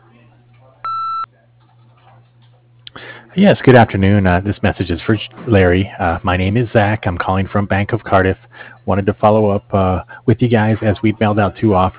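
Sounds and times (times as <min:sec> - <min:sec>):
low hum: 0:00.0 - 0:11.9
single electronic beep from an answering machine: 0:00.8 - 0:01.3
speech: 0:03.4 - 0:11.9.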